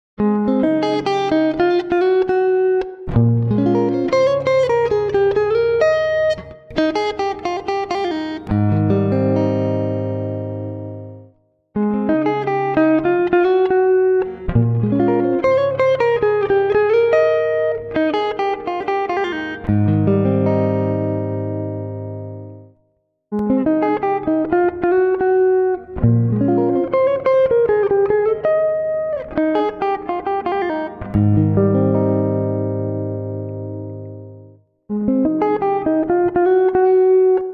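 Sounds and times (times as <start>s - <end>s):
Godin guitar playing single lines: 0.2s - 37.5s.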